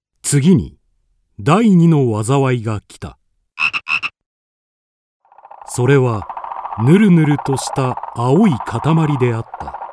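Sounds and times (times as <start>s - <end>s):
speech: 0.3s - 0.8s, 1.4s - 3.2s, 5.7s - 9.8s
loud frog croaks: 3.6s - 4.2s, 5.2s - 9.9s
chorus of croaking frogs: 5.2s - 9.9s.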